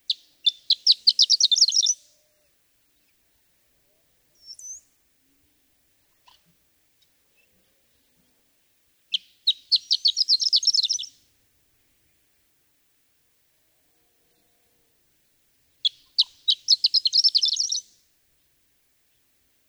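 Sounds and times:
horned lark song: 0:00.0 - 0:02.1, 0:09.1 - 0:11.2, 0:15.8 - 0:18.0.

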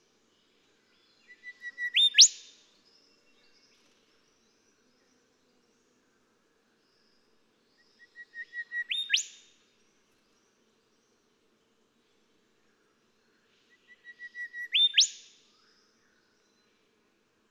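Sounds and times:
golden whistler song: 0:01.2 - 0:02.4, 0:08.1 - 0:09.4, 0:14.0 - 0:15.2.

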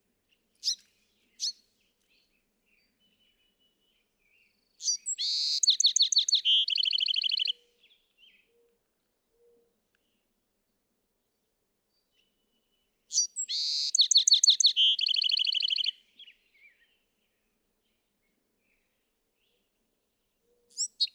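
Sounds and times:
Bewick's wren singing: 0:00.6 - 0:01.6, 0:04.8 - 0:07.6, 0:13.1 - 0:16.0, 0:20.7 - 0:21.1.

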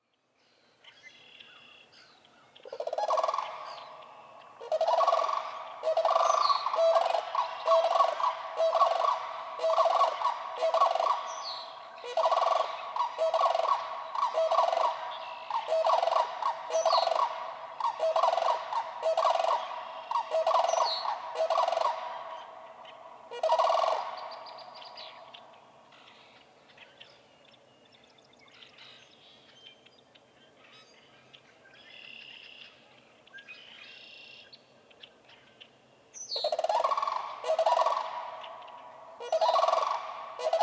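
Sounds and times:
Sandhill Crane calling: 0:02.6 - 0:26.4, 0:36.4 - 0:40.6.

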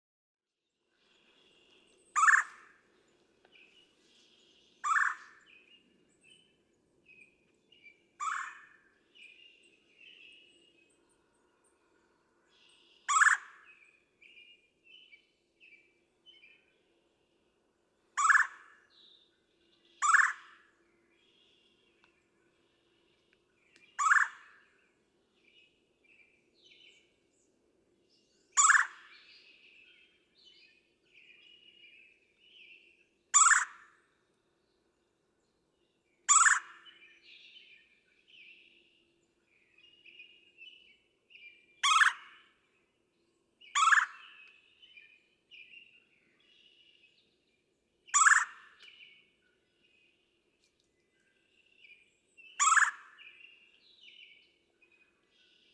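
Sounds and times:
Red-bellied Woodpecker: 0:01.7 - 0:06.6, 0:07.2 - 0:09.8, 0:12.7 - 0:13.9, 0:18.2 - 0:18.9, 0:19.8 - 0:22.2, 0:23.1 - 0:24.8, 0:28.6 - 0:29.7, 0:33.3 - 0:34.0, 0:36.3 - 0:37.2, 0:41.4 - 0:42.6, 0:43.6 - 0:47.0, 0:48.1 - 0:49.7, 0:50.6 - 0:55.7.

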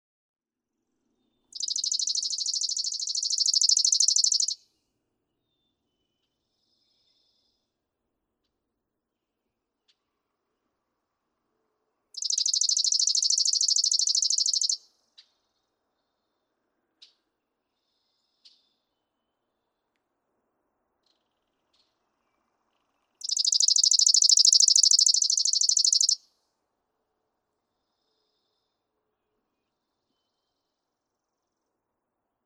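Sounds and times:
chipping sparrow calling: 0:01.6 - 0:04.6, 0:12.2 - 0:14.8, 0:23.2 - 0:26.2.

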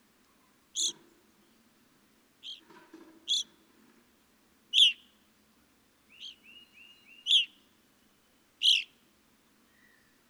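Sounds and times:
Evening grosbeak chirping: 0:00.8 - 0:01.0, 0:02.4 - 0:02.7, 0:03.3 - 0:03.5, 0:04.7 - 0:05.0, 0:06.1 - 0:07.6, 0:08.6 - 0:09.0.

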